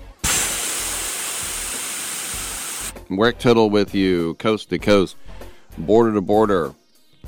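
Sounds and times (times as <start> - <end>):
AM radio static hiss: 0.2 - 2.9
speech: 3.1 - 6.8.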